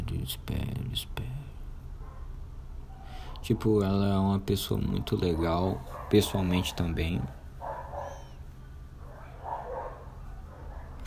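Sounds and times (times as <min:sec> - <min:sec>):
steady low hum: 0:00.0 - 0:11.0
speech: 0:00.2 - 0:01.3, 0:03.4 - 0:07.4
dog barking in short bursts: 0:02.0 - 0:04.0, 0:04.9 - 0:08.4, 0:09.0 - 0:11.0.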